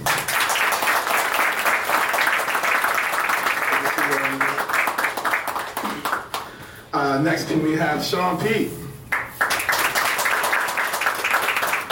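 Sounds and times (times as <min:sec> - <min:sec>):
crowd applause: 0:00.0 - 0:06.6, 0:09.1 - 0:11.9
speech: 0:07.2 - 0:08.8.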